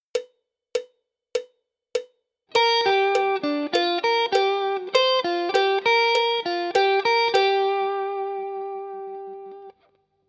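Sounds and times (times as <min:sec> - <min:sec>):
G minor pentatonic guitar lick: 0:02.5 - 0:09.9.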